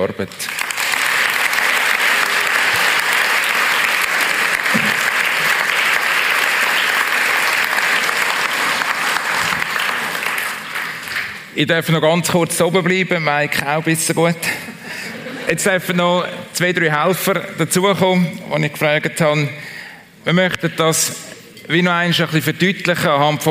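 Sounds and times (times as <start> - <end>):
speech: 0.0 - 0.7, 11.6 - 14.8, 15.5 - 19.6, 20.2 - 23.4
sustained applause from a large audience: 0.4 - 11.5.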